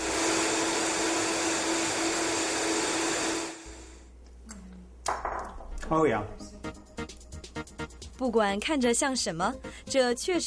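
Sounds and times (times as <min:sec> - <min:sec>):
blender mixing soup ingredients: 0:00.0 - 0:04.0
speech: 0:05.9 - 0:06.5, 0:08.2 - 0:10.4.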